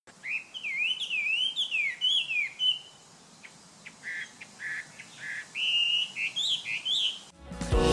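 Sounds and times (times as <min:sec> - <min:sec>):
Chinese hwamei singing loud whistled phrases: 0:00.2 - 0:03.0, 0:04.0 - 0:07.3.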